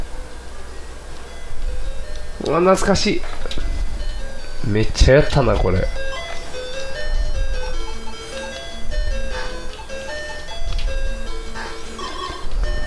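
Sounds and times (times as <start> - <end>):
chiptune-style Game Boy game music of square-wave beeps: 0.2 - 12.8
speech: 2.4 - 3.6, 4.6 - 6.1
low rumbling bumps: 3.0 - 12.8.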